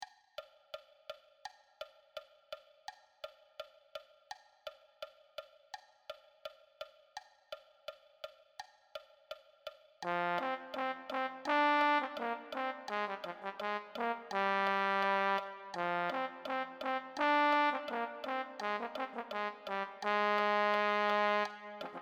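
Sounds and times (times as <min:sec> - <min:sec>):
low brass: 0:10.0 - 0:22.0.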